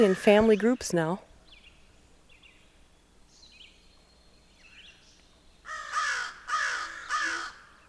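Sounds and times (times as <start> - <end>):
speech: 0.0 - 1.3
crow cawing along a county road: 5.7 - 7.8.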